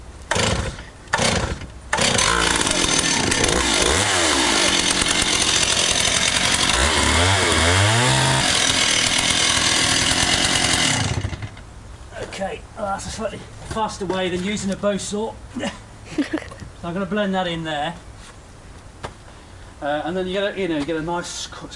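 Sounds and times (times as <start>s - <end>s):
chainsaw cutting the end off a log: 0.3s - 11.6s
speech: 13.2s - 15.7s, 16.8s - 18.1s, 19.8s - 21.7s.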